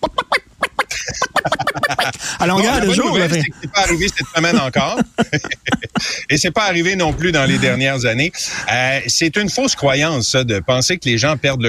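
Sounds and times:
person imitating a chicken clucking: 0:00.0 - 0:06.0
laughter: 0:00.0 - 0:10.0
speech: 0:02.4 - 0:11.6.

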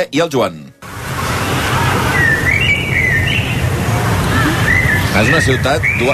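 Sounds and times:
speech: 0:00.0 - 0:00.9, 0:05.2 - 0:06.1
birds chirping in a city park: 0:00.8 - 0:06.1
loud rumble of traffic: 0:00.8 - 0:06.1
clear whistled bird call: 0:01.6 - 0:03.6, 0:04.3 - 0:06.1.

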